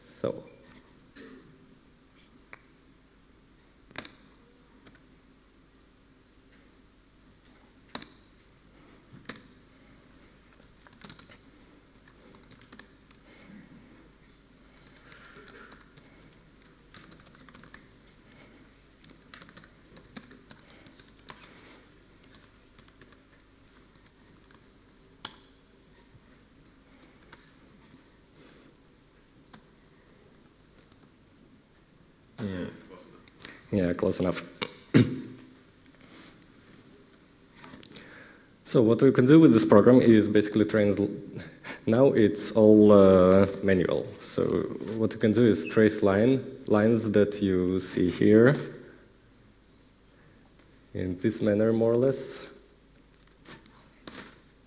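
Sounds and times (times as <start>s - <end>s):
speech: 0.2s - 0.5s, 32.4s - 35.1s, 38.7s - 48.8s, 51.0s - 52.5s
typing on a computer keyboard: 10.6s - 13.2s, 14.7s - 17.9s, 19.1s - 21.5s, 22.2s - 25.4s, 27.0s - 27.5s, 30.3s - 31.1s.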